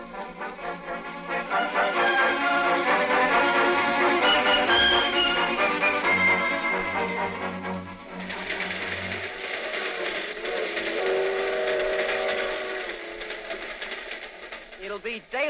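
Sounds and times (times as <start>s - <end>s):
freight train whistle blaring: 0.0s - 8.2s, 10.4s - 13.5s
freight train rumbling: 0.0s - 15.4s
clattering roar of freight train wheels: 7.2s - 15.2s.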